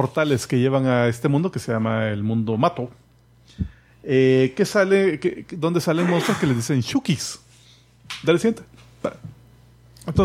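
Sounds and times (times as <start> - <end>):
speech: 0.0 - 7.4, 8.1 - 9.4, 10.1 - 10.2
steady low hum: 0.0 - 10.2
quick stifled sneeze: 6.0 - 6.6.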